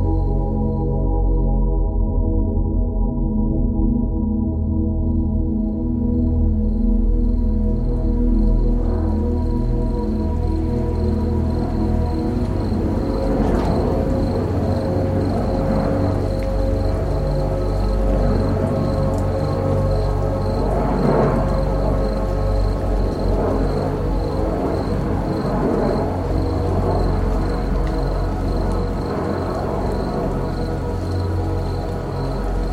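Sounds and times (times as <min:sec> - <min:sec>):
calm sustained relaxing music with low drone: 0:00.0 - 0:32.7.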